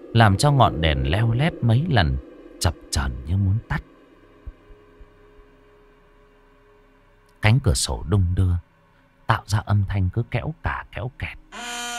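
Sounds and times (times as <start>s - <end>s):
faint hum: 0.0s - 11.9s
speech: 0.2s - 3.9s, 7.4s - 8.7s, 9.3s - 11.8s
heartbeat pounding of a woman trembling in fear: 4.4s - 5.4s.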